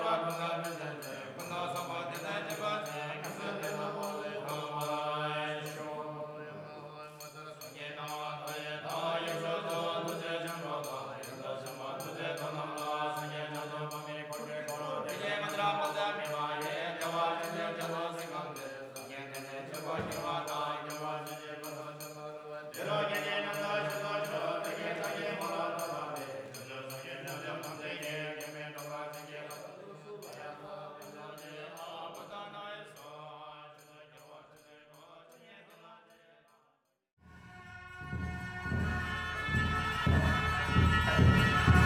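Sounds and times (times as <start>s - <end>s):
Buddhist monks chanting in a prayer ceremony: 0.0s - 35.9s, 37.4s - 41.8s.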